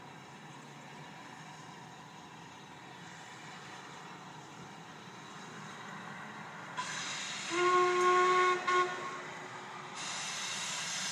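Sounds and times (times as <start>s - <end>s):
steam train hiss and rumble: 0.0s - 11.1s
steam train whistle: 6.8s - 11.1s.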